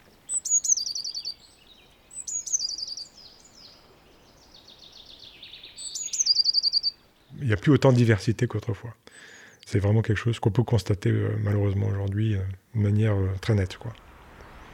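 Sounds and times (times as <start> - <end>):
blue tit chatter: 0.0 - 7.4
soft outdoor background: 0.0 - 14.7
blue tit calling and singing: 0.2 - 7.4
speech: 7.4 - 14.0.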